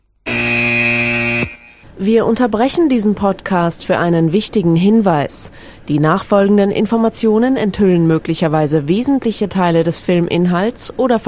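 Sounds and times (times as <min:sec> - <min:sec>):
loud harsh buzzer blaring: 0:00.3 - 0:01.9
speech: 0:02.0 - 0:11.2.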